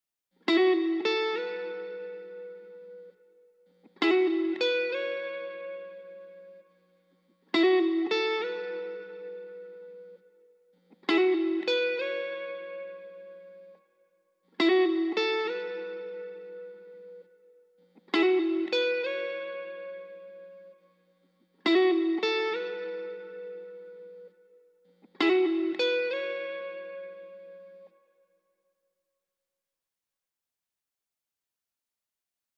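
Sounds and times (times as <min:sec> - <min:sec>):
guitar lead melody in A major: 0:00.5 - 0:03.2, 0:04.0 - 0:06.6, 0:07.6 - 0:10.3, 0:11.0 - 0:13.8, 0:14.6 - 0:17.4, 0:18.0 - 0:20.8, 0:21.6 - 0:24.3, 0:25.1 - 0:27.9.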